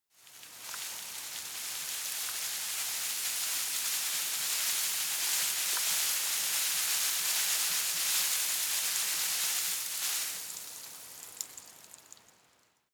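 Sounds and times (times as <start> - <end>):
shrub with tiny leaves rustling: 0.2 - 10.5.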